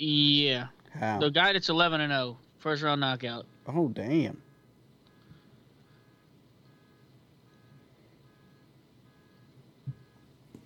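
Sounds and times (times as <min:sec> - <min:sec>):
speech: 0:00.0 - 0:04.5
car alarm beeping outside in the neighborhood: 0:03.4 - 0:10.4.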